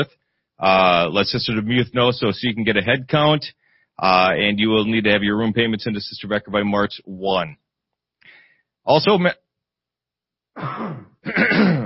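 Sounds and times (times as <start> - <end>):
speech: 0.0 - 7.6, 8.2 - 9.4, 10.6 - 11.8
person clearing throat: 10.6 - 11.8.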